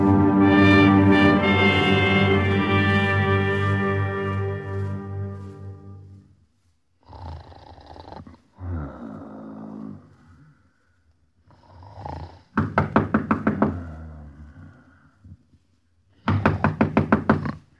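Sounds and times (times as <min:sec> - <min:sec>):
low hum: 0:00.0 - 0:06.4
rapid firm knocking on a door at night: 0:12.6 - 0:13.7, 0:16.3 - 0:17.5.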